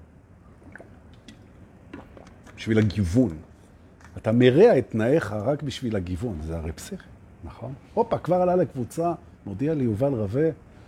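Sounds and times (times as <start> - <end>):
soft wet gulps: 0.5 - 2.6
person sipping lukewarm water: 0.6 - 2.6
speech: 2.6 - 3.5, 4.2 - 10.7.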